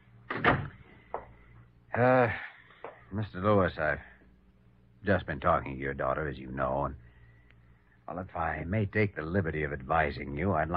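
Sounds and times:
door opening or closing: 0:00.3 - 0:00.8
speech: 0:02.0 - 0:02.5, 0:03.1 - 0:04.1, 0:05.0 - 0:07.0, 0:08.1 - 0:10.7.

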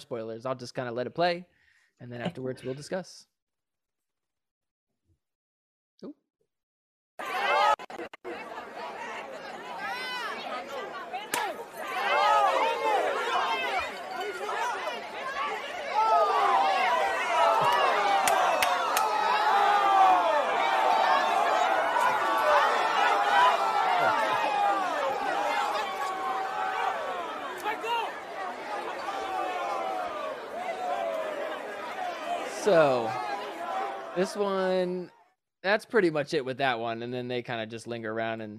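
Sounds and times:
speech: 0:00.0 - 0:03.3, 0:06.0 - 0:06.2, 0:34.2 - 0:38.5
rowdy crowd shouting during a brawl: 0:07.2 - 0:35.0
laughter: 0:07.3 - 0:34.4.

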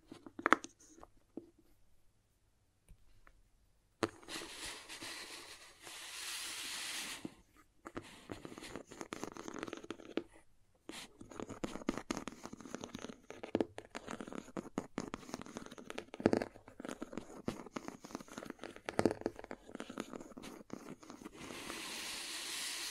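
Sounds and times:
dense gritty crayon scratching and cutting strokes: 0:04.1 - 0:10.3, 0:10.9 - 0:22.9.

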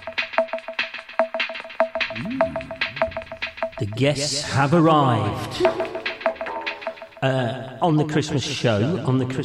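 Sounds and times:
steady punchy electronic beat: 0:00.0 - 0:07.3
instrumental background bed music with electronic beat: 0:00.0 - 0:09.4
repeating bright tone: 0:01.8 - 0:07.2
gliding bass line: 0:02.1 - 0:04.4
speech: 0:03.8 - 0:06.0, 0:07.2 - 0:09.4.

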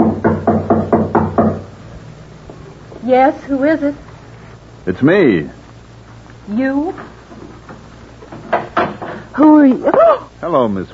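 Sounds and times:
firm knocking on a wooden door: 0:00.0 - 0:01.7, 0:08.3 - 0:09.2
faint hum: 0:00.0 - 0:10.9
speech: 0:03.1 - 0:04.0, 0:04.8 - 0:05.6, 0:06.5 - 0:07.2, 0:09.4 - 0:10.9.

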